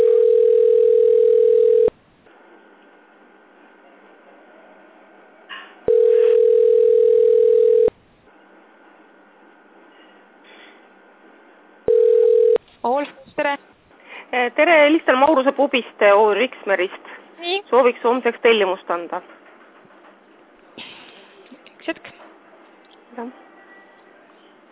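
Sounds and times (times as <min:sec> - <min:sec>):
steady mid-pitched telephone line tone while on hold for a sales department: 0:00.0 - 0:02.0, 0:05.9 - 0:07.9, 0:11.9 - 0:12.6
speech: 0:14.9 - 0:17.1, 0:17.7 - 0:19.4, 0:23.2 - 0:23.4.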